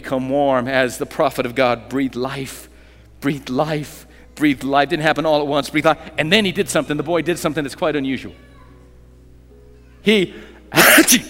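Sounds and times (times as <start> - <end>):
speech: 0.1 - 8.5, 10.0 - 11.2
person imitating sneezing: 10.7 - 11.2.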